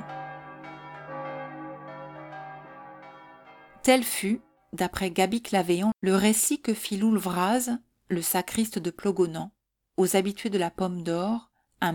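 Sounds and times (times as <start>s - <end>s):
church bells tolling a death knell: 0.0s - 4.8s
speech: 3.8s - 11.9s.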